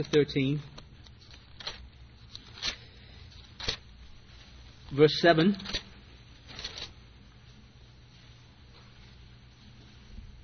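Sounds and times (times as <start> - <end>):
speech: 0.0 - 0.7, 4.9 - 5.8
low room hum: 0.0 - 10.4
Bible pages turning and rustling: 0.8 - 2.8, 3.5 - 3.8, 5.6 - 7.0.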